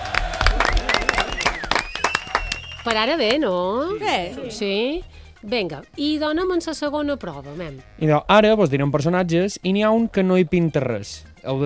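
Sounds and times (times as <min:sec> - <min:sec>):
audience clapping after a correct quiz answer: 0:00.0 - 0:03.6
people cheering: 0:00.0 - 0:04.6
speech: 0:02.8 - 0:11.6.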